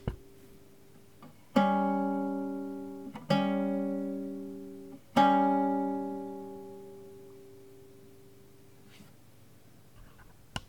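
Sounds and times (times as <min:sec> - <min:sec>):
guitar playing diminished fifth intervals: 0:00.0 - 0:08.6.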